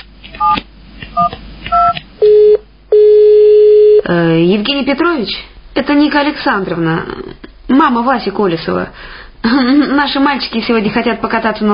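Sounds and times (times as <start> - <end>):
telephone number being dialed with dual-tone keypad beeps: 1.2 - 4.0
speech: 4.1 - 11.7.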